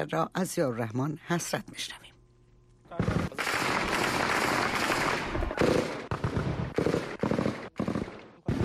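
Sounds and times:
speech: 0:00.0 - 0:02.1
celebratory rifle fire bursts: 0:03.0 - 0:08.6.

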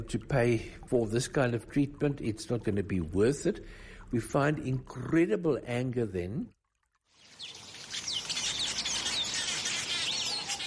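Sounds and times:
speech: 0:00.0 - 0:06.6
birds chirping in a garden: 0:07.2 - 0:10.6.

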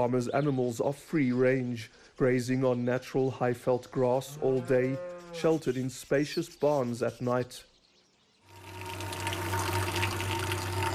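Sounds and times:
speech: 0:00.0 - 0:07.7
low constant mechanical hum: 0:08.5 - 0:10.9
milk pouring into a container: 0:08.5 - 0:10.9.

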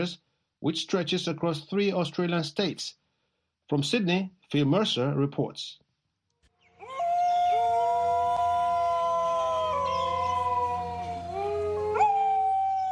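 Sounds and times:
speech: 0:00.0 - 0:03.0, 0:03.7 - 0:05.8
several dingoes howling in overlapping voices: 0:06.8 - 0:12.9.

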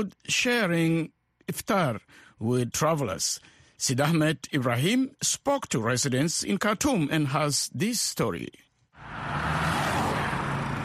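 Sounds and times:
speech: 0:00.0 - 0:10.1
car traffic roaring on a city street: 0:09.0 - 0:10.8.

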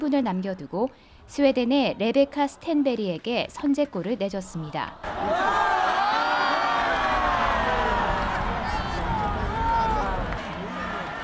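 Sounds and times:
speech: 0:00.0 - 0:05.8
large arena crowd chanting and cheering in unison: 0:05.0 - 0:11.2.

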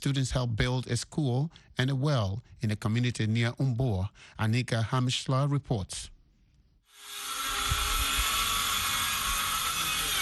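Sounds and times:
speech: 0:00.0 - 0:06.2
power drills roaring in a village in Senegal: 0:06.9 - 0:10.2.

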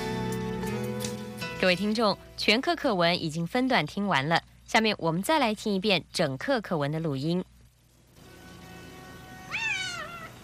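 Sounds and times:
quiet hum: 0:00.0 - 0:10.4
speech: 0:01.6 - 0:07.5
cat giving a drawn-out meow: 0:09.0 - 0:10.4.

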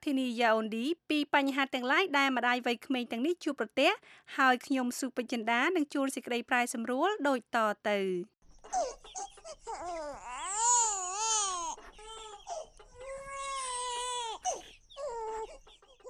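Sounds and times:
speech: 0:00.1 - 0:11.2
two-month-old baby girl crying in a restaurant in Yaoundé, Cameroon: 0:08.6 - 0:16.0.

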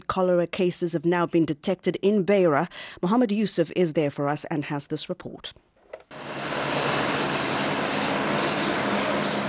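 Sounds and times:
speech: 0:00.1 - 0:06.2
helicopter engines roaring with rumble and whine: 0:06.1 - 0:09.4.

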